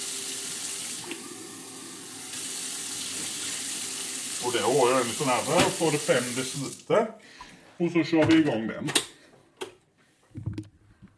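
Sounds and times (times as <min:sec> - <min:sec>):
kitchen tap water running: 0:00.0 - 0:06.9
speech: 0:04.4 - 0:09.1.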